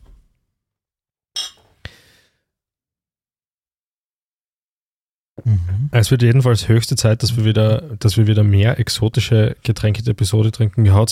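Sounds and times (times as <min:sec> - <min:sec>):
glasses of Ratafia liqueur clinking in a toast: 0:01.4 - 0:01.7
speech: 0:05.4 - 0:11.1.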